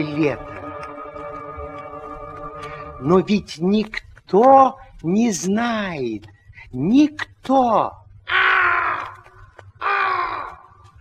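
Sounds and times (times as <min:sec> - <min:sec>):
speech: 0:00.0 - 0:00.5, 0:03.0 - 0:08.4
black raven cawing on a branch: 0:08.2 - 0:10.8.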